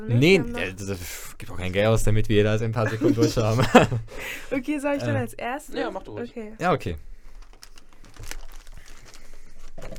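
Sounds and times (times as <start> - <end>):
speech: 0.0 - 7.1
laughter: 2.8 - 4.2
gift wrapping paper crinkling while unwrapping: 7.2 - 9.9.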